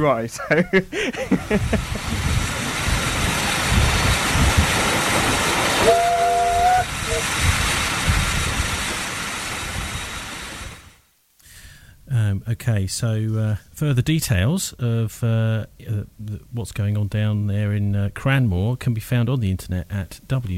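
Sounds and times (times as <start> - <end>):
speech: 0.0 - 2.4, 12.4 - 20.5
laughter: 0.3 - 2.4
steam locomotive running with heavy rumble and hiss on the East Somerset Railway: 0.9 - 11.0
steam locomotive whistle: 5.5 - 7.5.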